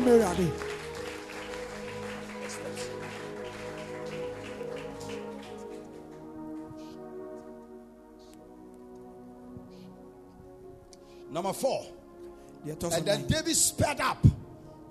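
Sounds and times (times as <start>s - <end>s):
crowd clapping: 0.0s - 7.0s
speech: 0.1s - 0.7s, 11.3s - 12.0s, 12.6s - 14.4s.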